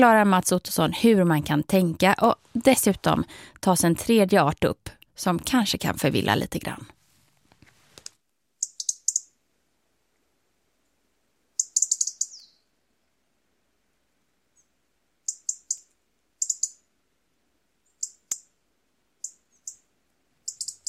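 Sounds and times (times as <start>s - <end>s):
speech: 0.0s - 7.0s
small bird giving sharp high clicking and chattering calls: 8.6s - 9.3s, 11.6s - 12.5s, 15.2s - 16.8s, 17.9s - 18.5s, 19.2s - 19.8s, 20.4s - 20.8s.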